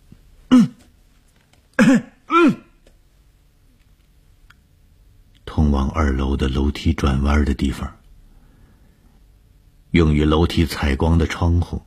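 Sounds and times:
man coughing loudly on a stairway: 0:00.5 - 0:00.9, 0:01.8 - 0:02.8
speech: 0:01.9 - 0:02.1, 0:05.9 - 0:08.0, 0:09.9 - 0:11.8.

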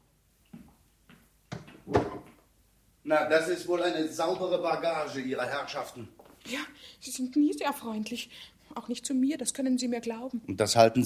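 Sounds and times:
door being opened or closed with wooden knocks and thud: 0:01.5 - 0:02.4
speech: 0:03.1 - 0:11.0.

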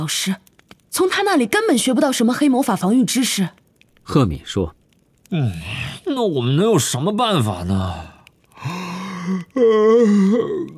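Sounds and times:
speech: 0:00.0 - 0:10.7
person yawning: 0:08.6 - 0:10.7.

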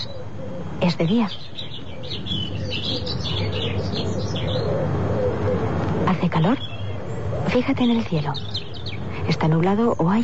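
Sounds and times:
birds chirping in daytime: 0:00.0 - 0:10.2
speech: 0:00.8 - 0:05.3, 0:06.0 - 0:06.8, 0:07.4 - 0:08.6, 0:09.3 - 0:10.2.

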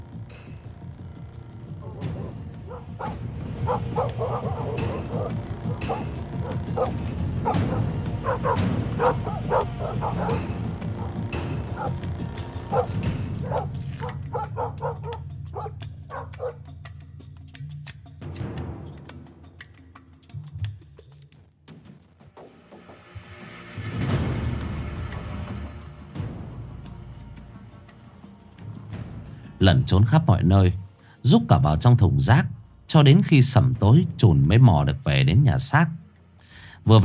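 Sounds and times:
dogs barking loudly throughout a neighbourhood: 0:01.7 - 0:16.8
speech: 0:03.7 - 0:04.8, 0:08.4 - 0:09.4, 0:29.8 - 0:36.0, 0:36.8 - 0:37.0.

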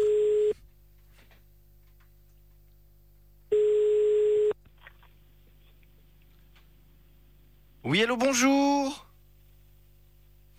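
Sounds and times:
ringback tone of an outgoing telephone call: 0:00.0 - 0:00.6, 0:03.5 - 0:04.6
speech: 0:07.9 - 0:09.1.

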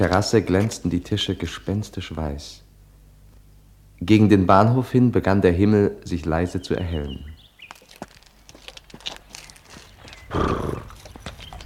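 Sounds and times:
speech: 0:00.0 - 0:02.6, 0:04.0 - 0:07.3
horse hooves clip-clopping while drawing a carriage: 0:07.6 - 0:11.6.

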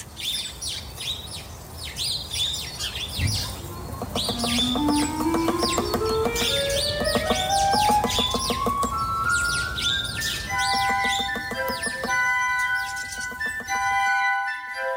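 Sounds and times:
sparrows chirping in a garden: 0:00.0 - 0:14.8.

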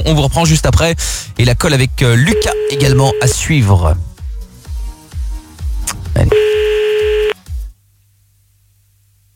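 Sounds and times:
speech: 0:00.0 - 0:04.1, 0:06.2 - 0:06.6
telephone line ringing tone during a call: 0:02.3 - 0:03.4, 0:06.3 - 0:07.4.

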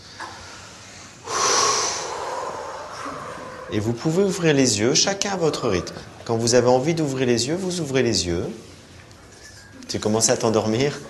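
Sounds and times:
deep breath drawn in during a guided relaxation exercise: 0:00.4 - 0:03.7
speech: 0:03.7 - 0:08.7, 0:09.9 - 0:11.0.

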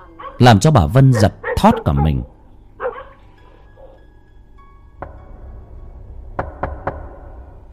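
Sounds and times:
speech: 0:00.4 - 0:02.3
knocking on a door: 0:06.4 - 0:07.1.

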